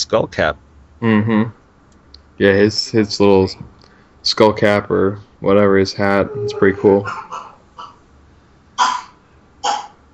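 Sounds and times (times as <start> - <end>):
speech: 0.1 - 1.6, 2.4 - 7.4
young boy coughing: 6.9 - 8.0, 8.8 - 10.0.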